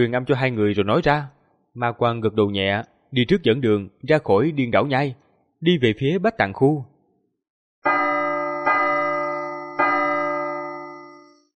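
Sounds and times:
speech: 0:00.0 - 0:06.9
great bell tolling from afar: 0:07.9 - 0:11.4.

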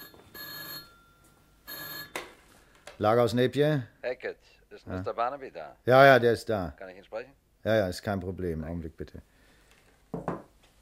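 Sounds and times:
telephone ringing in the night watchman's office: 0:00.0 - 0:02.4
speech: 0:03.0 - 0:09.3.

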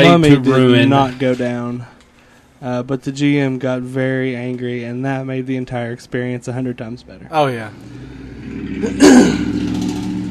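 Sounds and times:
speech: 0:00.2 - 0:01.9, 0:02.6 - 0:09.7
big jacked-up truck engine revving as it speeds off: 0:07.4 - 0:10.2.

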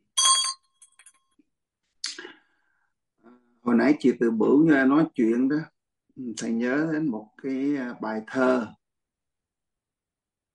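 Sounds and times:
small meditation bell ringing at a Buddhist class: 0:00.0 - 0:01.3
speech: 0:03.7 - 0:08.8.

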